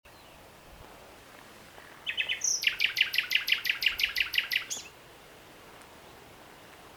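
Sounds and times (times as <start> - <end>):
Common nightingale (Luscinia megarhynchos) singing: 0.1 - 0.8, 1.7 - 6.9.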